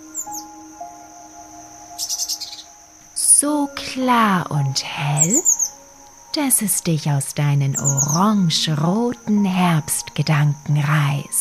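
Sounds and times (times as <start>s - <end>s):
bird twittering: 0.0s - 0.6s, 1.9s - 2.8s, 4.6s - 5.8s, 7.7s - 8.4s
thin high-pitched insect-like hum: 0.0s - 11.3s
speech: 3.4s - 5.6s, 6.3s - 11.3s.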